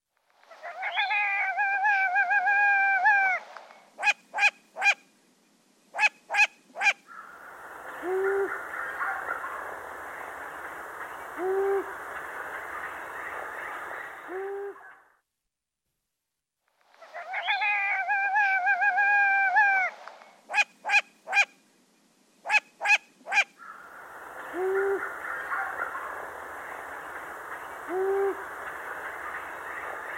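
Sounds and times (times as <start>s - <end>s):
long-eared owl calling: 0.4s - 5.0s, 5.9s - 15.1s, 16.9s - 21.6s, 22.4s - 30.1s
hissy noise: 2.2s - 6.0s, 6.6s - 14.9s, 19.4s - 30.1s.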